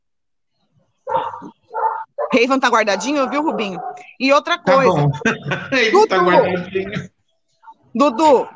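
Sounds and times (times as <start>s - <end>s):
dogs barking: 0.8s - 4.4s, 5.1s - 8.5s
speech: 2.4s - 7.1s, 7.9s - 8.5s
laughter: 4.7s - 7.1s.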